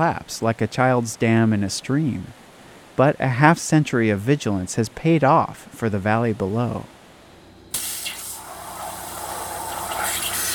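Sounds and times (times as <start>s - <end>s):
speech: 0.0s - 2.4s, 3.0s - 7.0s
abrasive waterjet with powdered garnet cutting a metal sheet: 7.7s - 10.5s.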